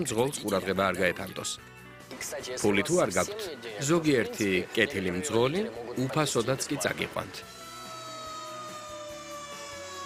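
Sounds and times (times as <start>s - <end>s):
speech: 0.0s - 7.6s
fire engine siren wailing: 6.3s - 10.0s.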